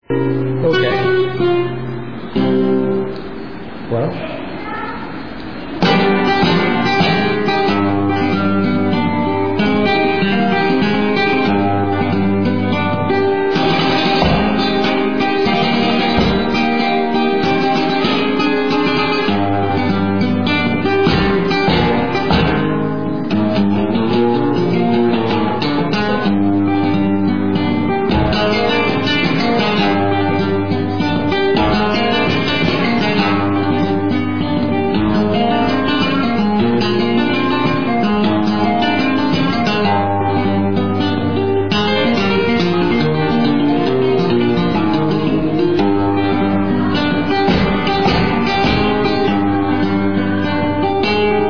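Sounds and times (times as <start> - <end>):
flamenco guitar playing solea in Sevilla: 0.0 - 51.4.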